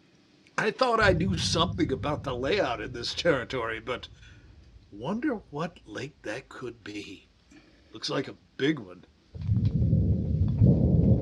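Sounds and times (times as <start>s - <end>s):
speech: 0.6s - 4.3s, 4.9s - 7.3s, 7.9s - 9.6s
deep rumble of thunder from an approaching storm: 1.0s - 7.2s, 9.4s - 11.2s.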